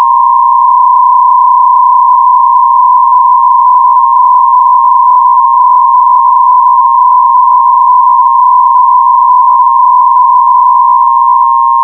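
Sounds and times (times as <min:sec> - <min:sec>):
PSK125R digital radio mode signal: 0:00.0 - 0:11.7.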